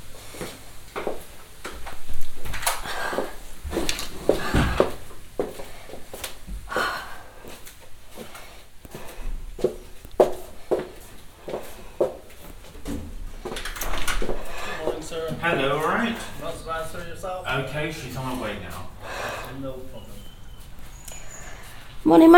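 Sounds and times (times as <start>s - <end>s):
footsteps: 0.0s - 17.2s, 17.9s - 22.3s
soft breathy sounds: 2.8s - 12.6s, 14.2s - 15.1s, 18.7s - 22.0s
door being opened: 12.8s - 14.5s
speech: 15.4s - 18.8s, 22.1s - 22.3s.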